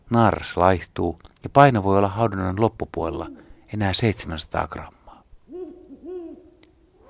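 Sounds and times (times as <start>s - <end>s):
speech: 0.1s - 5.0s
Ural owl hooting: 5.5s - 7.0s.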